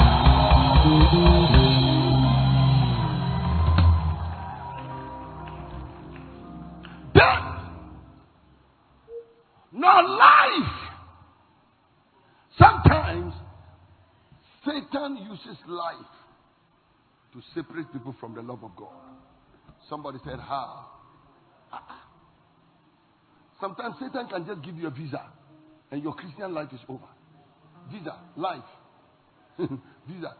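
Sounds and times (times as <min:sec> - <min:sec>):
audience screaming and praying aloud: 0:00.0 - 0:08.0
speech: 0:01.1 - 0:01.6, 0:15.1 - 0:16.3, 0:17.3 - 0:21.0, 0:23.6 - 0:27.2, 0:27.8 - 0:28.8, 0:29.6 - 0:30.3
person shouting: 0:07.1 - 0:07.8, 0:09.8 - 0:11.0.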